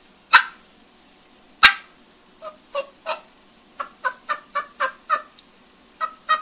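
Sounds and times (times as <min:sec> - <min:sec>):
turkey call imitating a hen's fly-down cackle: 0:00.3 - 0:00.6, 0:01.6 - 0:05.4, 0:06.0 - 0:06.4.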